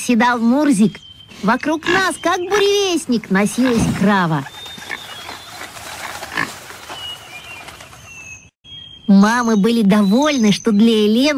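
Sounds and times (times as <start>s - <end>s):
speech: 0.0s - 4.6s, 9.1s - 11.3s
pig running around grunting and snuffling: 1.4s - 7.4s.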